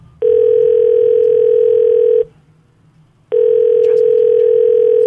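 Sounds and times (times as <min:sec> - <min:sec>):
long steady phone ringing tones: 0:00.2 - 0:02.3, 0:03.3 - 0:05.0.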